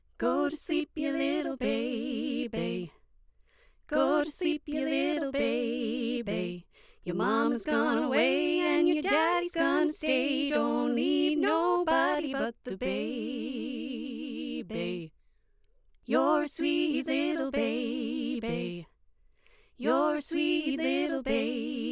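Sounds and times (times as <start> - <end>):
vocal harmonies: 0.0 - 15.2, 16.0 - 21.9.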